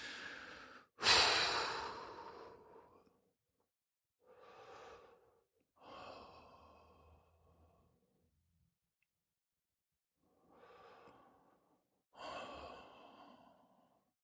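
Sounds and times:
person taking slow quiet breaths: 0.0s - 3.2s, 4.2s - 8.0s, 10.2s - 14.0s.

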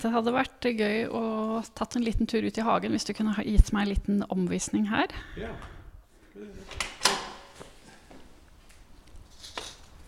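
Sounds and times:
speech: 0.0s - 5.8s
large door creaking: 6.6s - 7.6s
door latch clunking and rattling: 6.7s - 7.5s.

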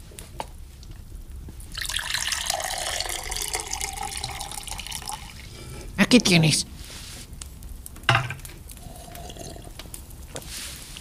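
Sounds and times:
water pouring into a glass: 1.7s - 5.5s, 8.8s - 9.7s
speech: 6.1s - 6.8s.

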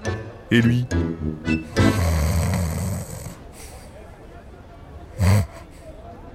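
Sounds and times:
speech: 0.5s - 2.1s
person snoring while being massaged: 1.7s - 3.8s, 5.2s - 5.8s.

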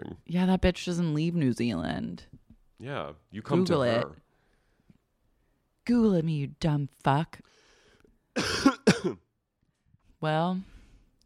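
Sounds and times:
speech: 0.3s - 4.2s, 5.9s - 7.6s, 8.4s - 9.2s, 10.2s - 10.7s
person coughing harshly: 8.4s - 9.3s.

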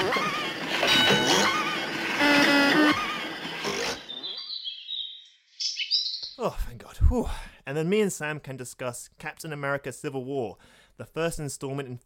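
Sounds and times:
loud dense mechanical whirring: 0.0s - 4.5s
thin high bird chirps and trills: 2.7s - 6.4s
speech: 6.5s - 12.0s.

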